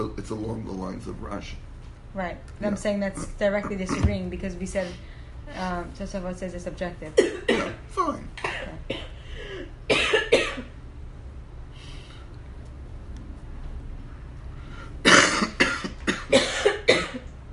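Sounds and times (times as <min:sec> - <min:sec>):
speech: 0:00.0 - 0:09.0
faint noise: 0:00.0 - 0:17.5
harsh coughing: 0:07.2 - 0:07.8, 0:08.4 - 0:10.8, 0:15.0 - 0:17.3.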